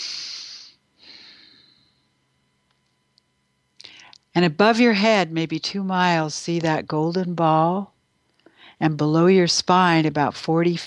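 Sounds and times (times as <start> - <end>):
deep breaths taken during a guided relaxation: 0.0 - 2.1, 8.4 - 8.8
speech: 4.4 - 7.9, 8.8 - 10.8.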